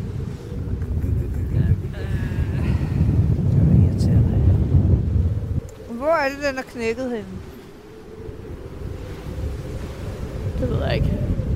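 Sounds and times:
strong wind blowing into a microphone: 0.0 - 11.5
activity: 0.6 - 4.7
speech: 6.2 - 7.4, 10.6 - 11.2.

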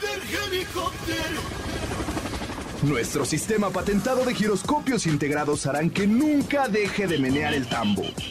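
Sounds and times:
helicopter rotor chopping with engine noise: 0.0 - 8.2
speech: 2.8 - 8.2.

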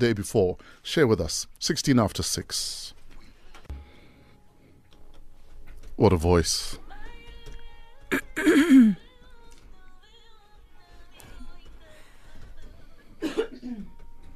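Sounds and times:
speech: 0.0 - 3.0, 6.0 - 6.8, 8.1 - 9.0
faint hum: 0.0 - 14.3
person coughing: 8.1 - 9.0, 13.2 - 13.9.

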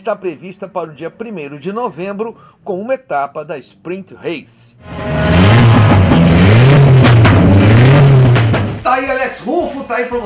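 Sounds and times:
speech: 0.0 - 5.8, 8.8 - 10.2
competition car engine revving on a racetrack: 4.8 - 8.8.

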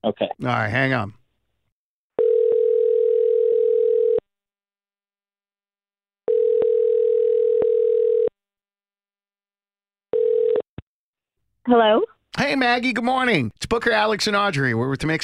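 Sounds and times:
speech: 0.0 - 1.2, 11.6 - 15.2
telephone line ringing on the caller's end: 2.2 - 4.2, 6.3 - 8.3, 10.1 - 10.7.

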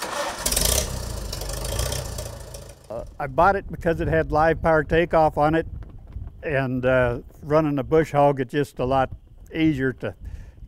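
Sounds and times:
Farmall 350 tractor engine in Kansas starting and idling: 0.0 - 3.4
speech: 3.0 - 5.8, 6.4 - 10.3.

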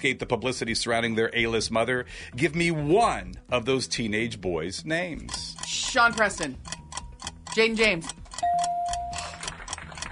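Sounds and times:
speech: 0.0 - 6.8, 7.6 - 8.2
game-show countdown timer ticking: 2.5 - 10.1.

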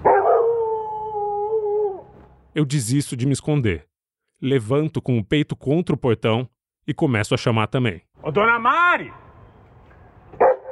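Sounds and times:
dog letting out a long steady howl: 0.0 - 2.1
dogs barking and howling angrily: 0.0 - 2.1, 10.4 - 10.7
speech: 2.6 - 9.2.

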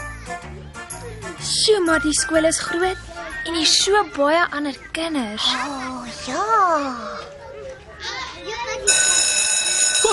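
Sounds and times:
children's voices chattering: 0.0 - 10.1
speech: 1.4 - 7.3
electric school bell ringing: 8.8 - 10.1.

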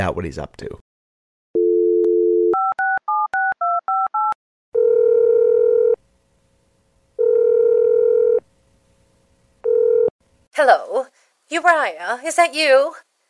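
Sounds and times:
speech: 0.0 - 0.8, 10.6 - 13.1
steady telephone dial tone: 1.6 - 6.0, 7.2 - 8.4, 9.7 - 10.1.

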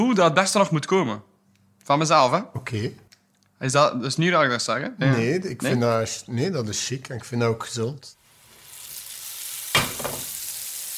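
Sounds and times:
speech: 0.0 - 3.0, 3.6 - 8.2
butter melting and sizzling in a frying pan: 8.2 - 10.9.

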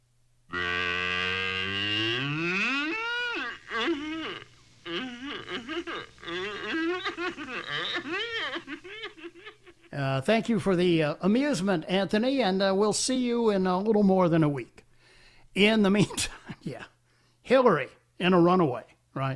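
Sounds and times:
cow mooing: 0.5 - 6.6
choppy bleating vocal bursts: 0.5 - 8.4
laughter: 2.5 - 10.0
speech: 10.0 - 14.8, 15.6 - 16.9, 17.5 - 19.3.

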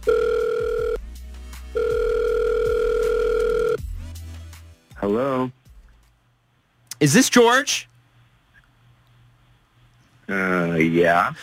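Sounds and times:
telephone ringback tone from an outgoing call: 0.0 - 1.0, 1.8 - 3.8
speech: 5.1 - 5.6, 7.0 - 7.9, 10.3 - 11.4.

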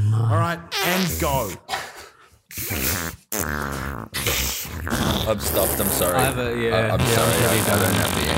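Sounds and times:
speech: 0.5 - 1.8, 2.6 - 8.3
person blowing raspberry fart noises with the lips: 2.5 - 8.3.

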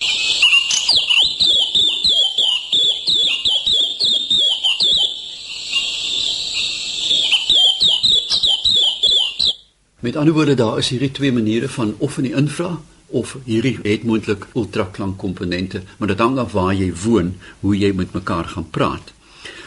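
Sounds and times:
white-eyes twittering and whistling in the tree canopy: 0.0 - 9.7
speech: 10.0 - 19.2.

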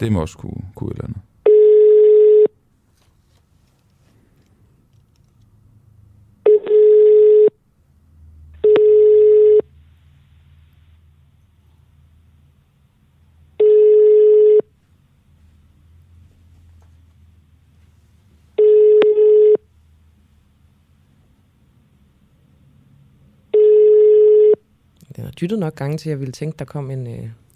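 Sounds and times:
speech: 0.0 - 1.3, 25.4 - 27.4
faint low hum: 0.0 - 27.5
phone ringback tone beeps on an outgoing cold call to a company: 1.5 - 2.6, 6.5 - 7.6, 8.6 - 9.7, 13.6 - 14.7, 18.6 - 19.6, 23.5 - 24.6.

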